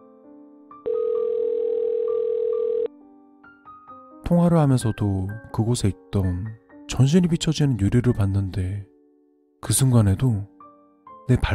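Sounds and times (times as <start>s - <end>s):
telephone ringback tone from an outgoing call at a bus stop: 0.9s - 2.9s
speech: 4.3s - 8.9s, 9.6s - 10.5s, 11.3s - 11.5s.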